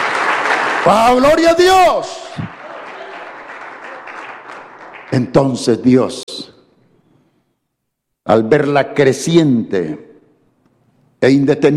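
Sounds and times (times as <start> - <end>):
church congregation applauding in praise: 0.0 - 5.6
speech: 0.8 - 2.2, 5.1 - 6.5, 8.3 - 10.1, 11.2 - 11.7.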